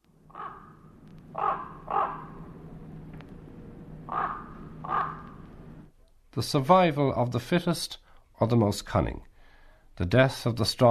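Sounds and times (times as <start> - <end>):
steady low rumble: 0.0 - 5.9
hoarse raven calls: 0.3 - 3.0, 3.7 - 5.9
speech: 6.4 - 9.3, 10.0 - 10.8.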